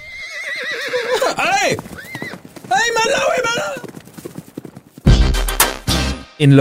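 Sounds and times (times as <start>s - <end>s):
horse whinnying: 0.0s - 4.2s
hooves clip-clopping: 0.6s - 5.7s
speech: 1.4s - 2.0s, 6.4s - 6.5s.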